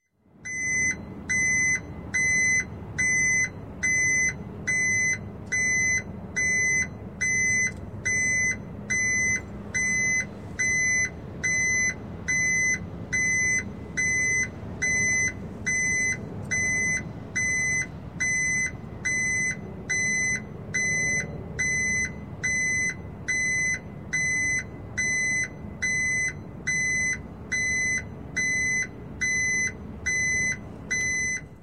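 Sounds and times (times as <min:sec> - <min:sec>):
truck back up warning signal: 0:00.4 - 0:31.6.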